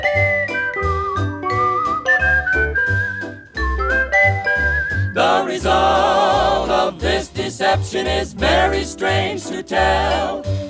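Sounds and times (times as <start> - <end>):
bright bouncy whistled melody: 0.0 - 7.2, 8.4 - 10.6
light instrumental accompaniment with steady low notes: 0.0 - 10.6
speech: 6.9 - 10.6.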